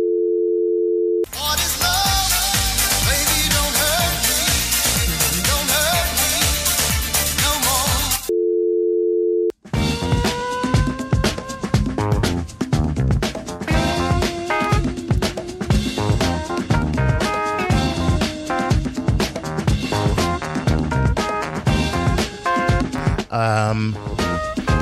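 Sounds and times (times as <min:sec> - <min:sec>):
steady telephone tone: 0:00.0 - 0:01.3, 0:08.3 - 0:09.5
dense loud full-band music: 0:01.3 - 0:08.2, 0:09.7 - 0:24.8.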